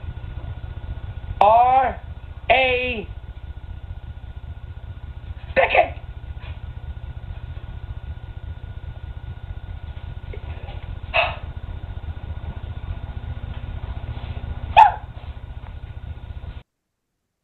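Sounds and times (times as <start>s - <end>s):
steady low hum of noise: 0.0s - 16.6s
speech: 1.4s - 3.2s, 5.6s - 6.0s
dog barking: 14.7s - 15.1s.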